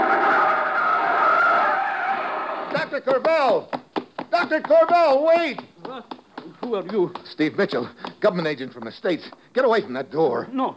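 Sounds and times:
car braking hard with tires skidding during a chase: 0.0 - 2.7
speech: 3.0 - 5.7, 6.6 - 10.7.

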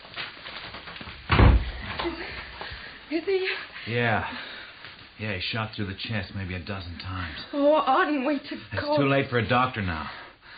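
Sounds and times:
low hiss: 0.0 - 10.5
door pushed shut with a solid thud: 1.3 - 1.9
speech: 3.1 - 4.5, 5.2 - 10.2.

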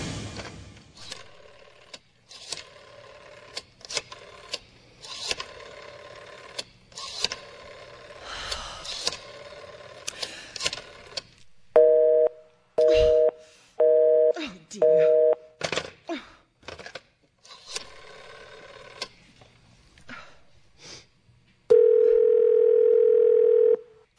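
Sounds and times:
telephone busy signal after a number is dialed: 11.8 - 15.4, 21.7 - 23.8.

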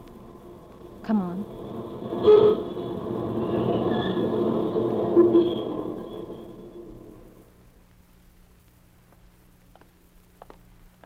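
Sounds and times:
faint high metallic squeals of subway train: 0.0 - 7.6
subway train rumbling on rails: 0.0 - 7.6
speech: 1.1 - 2.4.

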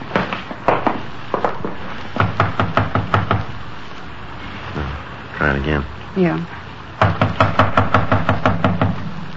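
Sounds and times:
police officers knocking on the front door of a house: 0.2 - 3.5, 7.0 - 9.1
speech: 5.5 - 7.2.

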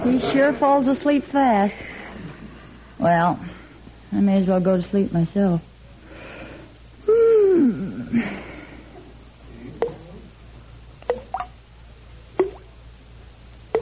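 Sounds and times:
speech: 0.1 - 2.0, 3.0 - 3.5, 4.1 - 5.7, 7.6 - 8.4
bathroom faucet dripping: 11.0 - 11.6, 12.4 - 12.7.

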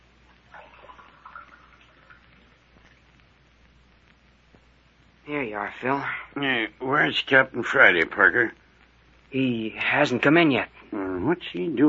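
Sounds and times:
low hiss: 0.0 - 11.8
water pouring into a glass for a drink: 0.5 - 2.4
speech: 5.3 - 8.6, 9.3 - 11.8.

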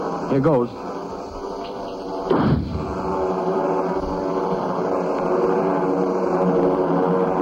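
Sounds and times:
steady rushing noise: 0.0 - 7.4
flare gun fired skyward: 2.2 - 3.2.

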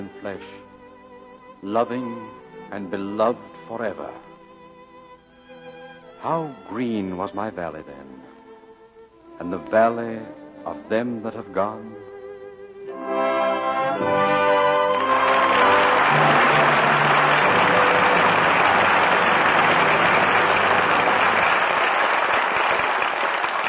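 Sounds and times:
speech: 0.0 - 0.7, 1.6 - 4.3, 6.2 - 8.3, 9.4 - 12.0
closing orchestral chord: 12.9 - 21.5
loud sustained applause from a studio audience: 14.0 - 23.6.

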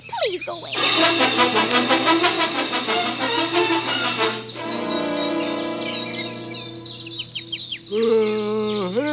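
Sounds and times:
dense flock of birds chirping and calling: 0.0 - 1.2, 3.8 - 9.1
steady low hum: 0.8 - 7.0.

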